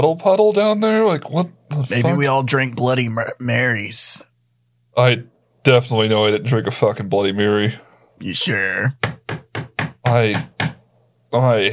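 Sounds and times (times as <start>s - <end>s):
speech: 0.0s - 4.3s, 5.0s - 9.2s, 10.1s - 10.6s, 11.3s - 11.7s
knocking: 8.9s - 10.8s.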